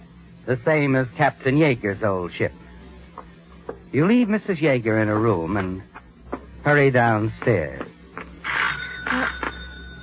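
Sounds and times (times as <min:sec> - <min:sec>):
speech: 0:00.4 - 0:02.6, 0:03.9 - 0:05.9, 0:06.6 - 0:07.9
doorbell chiming with bright tones: 0:08.7 - 0:10.0.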